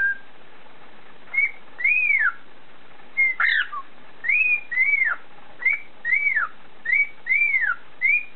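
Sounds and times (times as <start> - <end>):
cockatiel whistling a repeated tune: 0.0 - 0.3, 1.3 - 2.4, 3.2 - 8.3.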